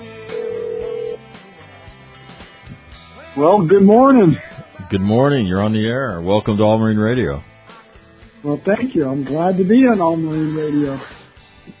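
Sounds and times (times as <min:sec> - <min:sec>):
steady electronic telephone ringing tone: 0:00.3 - 0:01.2
speech: 0:03.4 - 0:07.5, 0:08.4 - 0:11.1.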